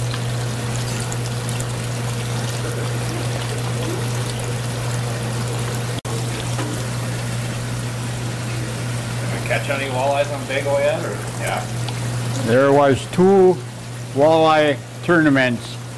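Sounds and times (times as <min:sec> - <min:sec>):
water pouring into worm bedding: 0:00.0 - 0:15.0
speech: 0:09.6 - 0:11.8, 0:12.4 - 0:15.8.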